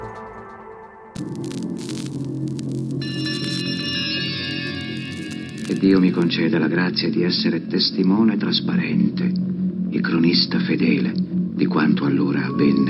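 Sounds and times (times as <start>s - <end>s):
dial-up modem static hiss bursts: 1.2s - 3.9s, 4.6s - 6.4s
dial-up modem high-pitched screeching tones: 1.2s - 6.3s, 12.0s - 12.8s
speech: 5.8s - 9.5s, 10.0s - 12.8s.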